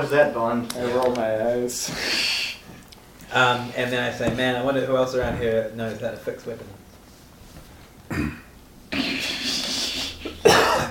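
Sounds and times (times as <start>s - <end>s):
speech: 0.0s - 2.5s, 3.3s - 6.8s
person coughing after inhaling kimchi: 8.1s - 9.2s, 10.0s - 10.9s.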